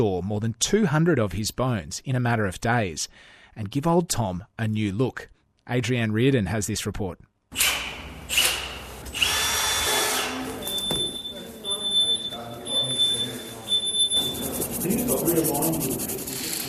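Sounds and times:
speech: 0:00.0 - 0:07.9
power drill whirring in a museum workshop during skeleton restoration: 0:07.6 - 0:10.7
busy scratchy noise: 0:11.2 - 0:16.6.

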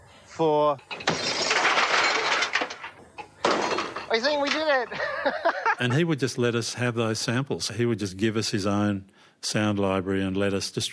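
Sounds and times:
speech: 0:00.4 - 0:01.3, 0:04.1 - 0:10.9
scattered fragments settling: 0:00.9 - 0:04.8
TV screen smashed for a sound-effects recording: 0:00.9 - 0:05.0
laughter: 0:04.9 - 0:06.2.

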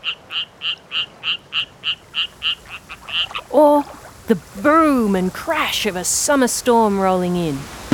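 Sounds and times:
striped rocket frog chirping: 0:00.0 - 0:04.6
speech: 0:03.6 - 0:07.8.

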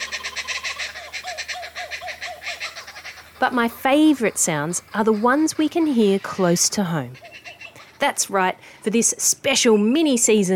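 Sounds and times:
laughing kookaburra cackling laugh: 0:00.0 - 0:08.3
speech: 0:03.4 - 0:07.3, 0:08.0 - 0:10.5.

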